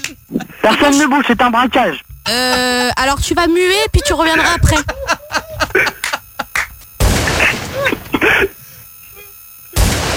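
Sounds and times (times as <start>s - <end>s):
laughter: 0.2s - 1.1s, 3.7s - 9.3s
speech: 0.7s - 5.9s
staged gunfire sound effect in a mock robbery sketch: 7.0s - 7.7s, 9.7s - 10.1s.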